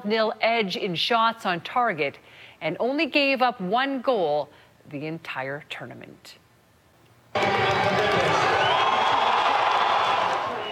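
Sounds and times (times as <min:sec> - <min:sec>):
speech: 0:00.0 - 0:06.4, 0:07.4 - 0:08.3
crowd of thousands cheering and shouting at a World Cup final watch party in Calgary: 0:07.4 - 0:10.7.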